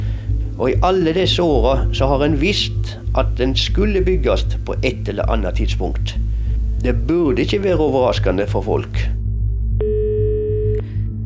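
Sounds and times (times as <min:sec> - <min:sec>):
constant low rumble: 0:00.0 - 0:11.2
speech: 0:00.6 - 0:09.2
telephone ringing tone: 0:09.8 - 0:10.8.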